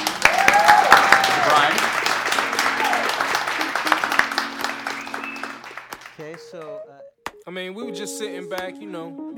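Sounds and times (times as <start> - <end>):
crowd applauding: 0.0 - 6.8
voices cheering: 0.0 - 6.8
speech: 8.0 - 9.3.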